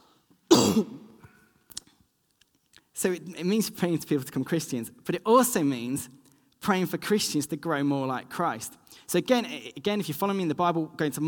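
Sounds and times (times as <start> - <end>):
harsh cough: 0.5 - 1.2
rough throat-clearing rasp: 0.5 - 1.2
speech: 0.8 - 1.0, 3.0 - 11.2.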